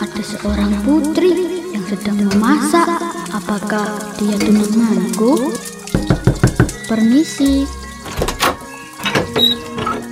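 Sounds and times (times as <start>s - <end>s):
speech: 0.2s - 5.7s, 6.9s - 7.8s
door scraping and rattling: 5.9s - 6.9s, 7.6s - 10.1s
door being opened: 5.9s - 10.1s.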